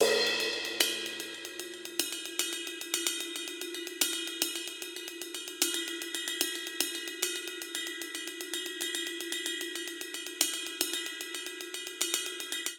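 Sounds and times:
triplet hip hop cymbals: 0:00.0 - 0:12.7.

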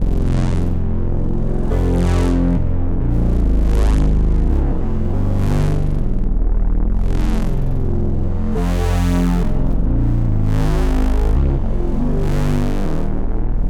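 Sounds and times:
hazy bass pulse in F minor at 140 bpm: 0:00.0 - 0:13.6.

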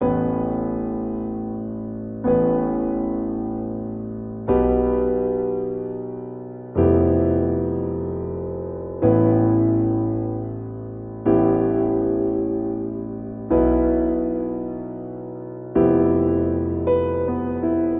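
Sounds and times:
cinematic grand piano ostinato in A minor: 0:00.0 - 0:17.9.

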